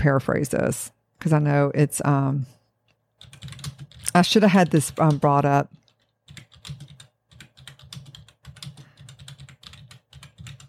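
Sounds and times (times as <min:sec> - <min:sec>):
speech: 0:00.0 - 0:02.6, 0:04.2 - 0:05.8
fingers typing on a computer keyboard: 0:02.9 - 0:10.6.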